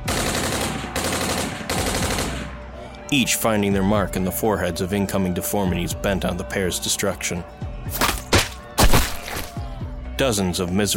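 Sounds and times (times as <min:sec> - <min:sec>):
rapid machine-gun gunfire: 0:00.0 - 0:02.5
speech: 0:03.1 - 0:08.0, 0:10.2 - 0:10.9.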